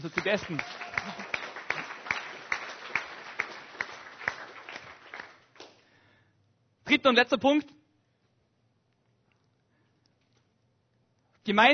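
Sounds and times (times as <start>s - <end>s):
speech: 0.0s - 1.4s, 6.9s - 7.8s, 11.4s - 11.7s
audience applauding in a rhythmic beat: 0.0s - 6.0s.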